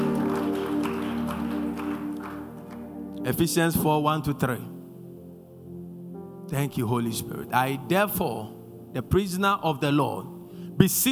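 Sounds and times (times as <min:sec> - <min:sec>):
audience clapping: 0:00.0 - 0:03.2
sustained organ or keyboard chords: 0:00.0 - 0:11.1
speech: 0:03.2 - 0:04.8, 0:06.5 - 0:11.1.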